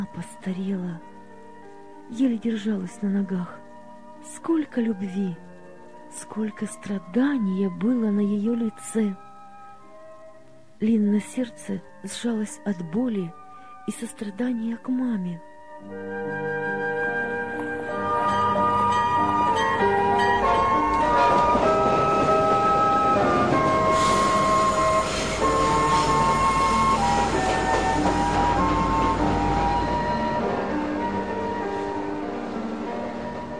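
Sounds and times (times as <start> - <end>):
speech: 0.0 - 1.1, 2.1 - 3.6, 4.2 - 5.5, 6.1 - 9.2, 10.8 - 16.5
departing train rumble: 17.6 - 33.5.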